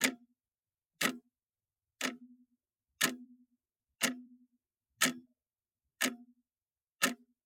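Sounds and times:
clock ticking: 0:00.0 - 0:00.2, 0:01.0 - 0:01.2, 0:02.0 - 0:02.3, 0:03.0 - 0:03.3, 0:04.0 - 0:04.3, 0:05.0 - 0:05.2, 0:06.0 - 0:06.3, 0:07.0 - 0:07.3.

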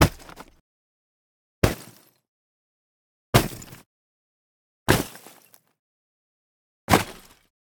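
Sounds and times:
thick ice impacts: 0:00.0 - 0:00.6, 0:01.6 - 0:02.1, 0:04.9 - 0:05.6, 0:06.9 - 0:07.5.

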